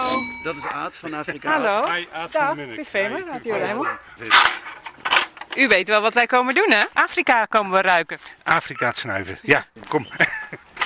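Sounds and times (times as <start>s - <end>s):
speech: 0.4s - 4.7s, 5.6s - 10.4s
young watchdog puppy barking: 3.6s - 4.1s
laughter: 10.0s - 10.7s.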